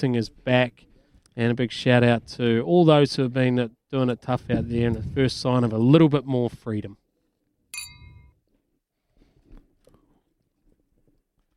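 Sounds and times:
speech: 0:00.0 - 0:07.0
glasses clinking together in a toast: 0:07.8 - 0:08.3.

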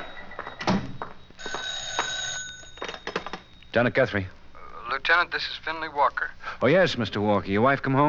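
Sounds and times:
telephone bell ringing with a bright metallic jangle: 0:00.0 - 0:03.6
speech: 0:03.8 - 0:04.4, 0:05.1 - 0:08.0.

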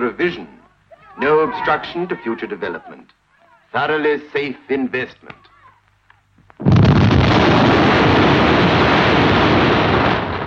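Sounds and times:
speech: 0:00.0 - 0:00.6, 0:01.2 - 0:05.4
bomb explosion sound effect: 0:06.6 - 0:10.4.

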